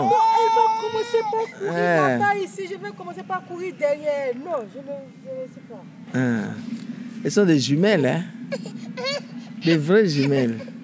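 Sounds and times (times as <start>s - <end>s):
toddler whimpering and crying: 0.0s - 2.0s, 8.5s - 10.7s
speech: 1.4s - 10.7s.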